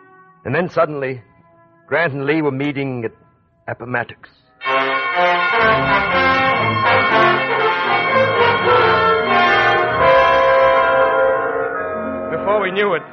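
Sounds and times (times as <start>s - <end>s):
speech: 0.4s - 1.3s, 1.9s - 6.9s, 12.7s - 13.1s
several church bells ringing in an overlapping peal: 4.6s - 13.1s.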